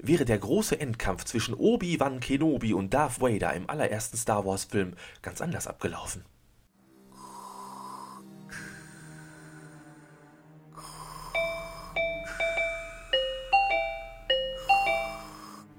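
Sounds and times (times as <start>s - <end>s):
speech: 0.0s - 6.3s
low snore-like breathing: 6.9s - 15.7s
loud doorbell chiming a melodic run: 11.4s - 15.6s.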